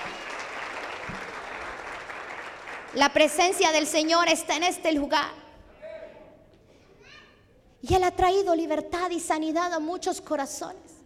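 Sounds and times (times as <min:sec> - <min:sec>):
audience applauding at a church service: 0:00.0 - 0:03.0
speech: 0:02.9 - 0:05.4, 0:07.8 - 0:10.9.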